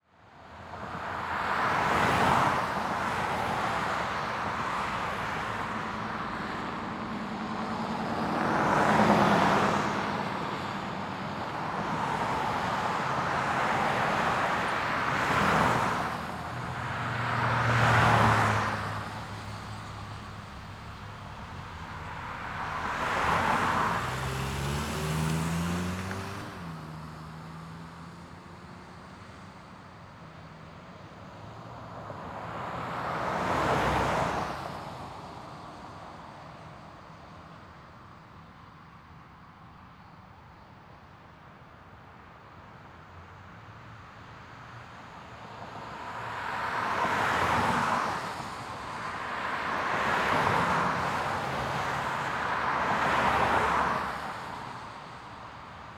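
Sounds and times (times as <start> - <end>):
heavy traffic: 0.4 - 37.5, 43.2 - 55.9.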